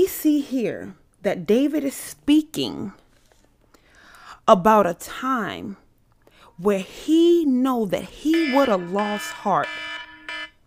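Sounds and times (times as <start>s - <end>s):
speech: 0.0s - 3.0s, 4.5s - 5.8s, 6.6s - 9.9s
loud electronic alarm blaring in harsh buzzing bursts: 8.3s - 10.6s.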